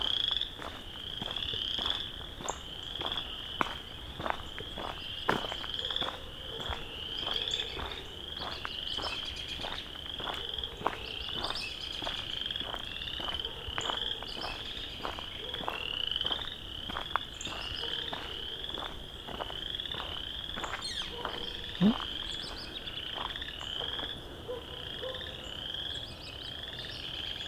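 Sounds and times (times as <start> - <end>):
chorus frogs calling in a dense chorus: 0.0 - 27.4
faint bird call: 20.6 - 22.9.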